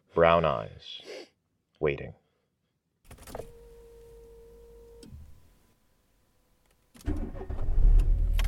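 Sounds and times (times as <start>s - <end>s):
speech: 0.2s - 2.2s
car engine cranking and starting: 7.0s - 8.4s.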